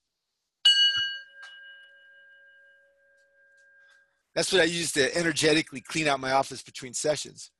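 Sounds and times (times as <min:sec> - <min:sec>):
meditation bell being struck: 0:00.6 - 0:04.3
speech: 0:04.4 - 0:07.5.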